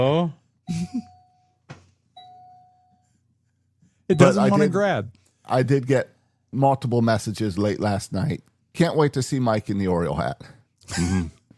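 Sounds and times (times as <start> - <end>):
speech: 0.0 - 1.1, 4.1 - 11.4
doorbell chiming ding-dong: 0.8 - 1.6, 2.2 - 3.1.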